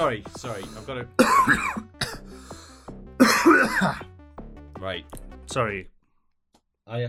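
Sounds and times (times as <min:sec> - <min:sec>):
speech: 0:00.0 - 0:02.0, 0:03.2 - 0:04.1, 0:04.8 - 0:05.9, 0:06.9 - 0:07.0
throat-clearing and hacking: 0:00.6 - 0:02.6, 0:03.2 - 0:04.1
person coughing: 0:01.2 - 0:02.3, 0:03.2 - 0:04.0.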